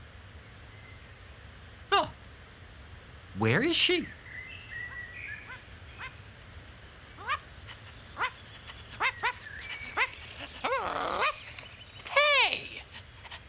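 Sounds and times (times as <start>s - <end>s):
speech: 1.9s - 2.2s, 3.4s - 4.2s
small dog whimpering and yipping: 7.0s - 13.4s.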